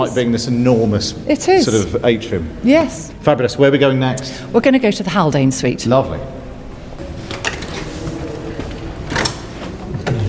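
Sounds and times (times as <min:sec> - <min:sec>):
speech: 0:00.0 - 0:06.4
big heavy-duty wooden doors creaking and thudding open: 0:06.6 - 0:10.2.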